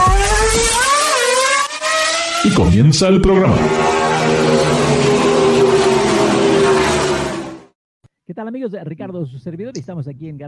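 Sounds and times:
car engine revving in first gear as the accelerator is pressed: 0.0 - 7.8
speech: 2.4 - 4.8, 8.3 - 10.4.

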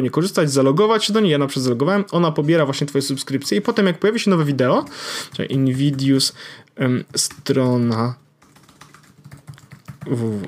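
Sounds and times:
speech: 0.0 - 8.2, 10.1 - 10.4
typing on a computer keyboard: 5.2 - 6.2, 7.1 - 10.4.

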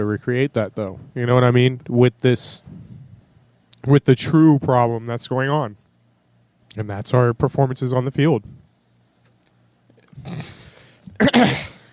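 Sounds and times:
speech: 0.0 - 2.8, 3.8 - 5.8, 6.8 - 8.6
person coughing harshly in a coughing fit: 10.2 - 11.9.

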